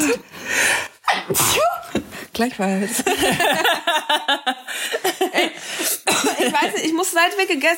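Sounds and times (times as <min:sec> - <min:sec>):
speech: 0:00.0 - 0:00.4, 0:01.2 - 0:01.8, 0:02.4 - 0:07.7
sneeze: 0:01.1 - 0:01.9
laughter: 0:02.9 - 0:07.0.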